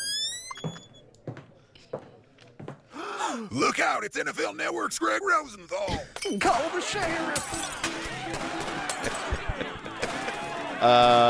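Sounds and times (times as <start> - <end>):
door creaking open with a squealing groan: 0.0 - 1.1
speech: 3.5 - 8.4, 10.8 - 11.2
laughter: 6.4 - 11.2.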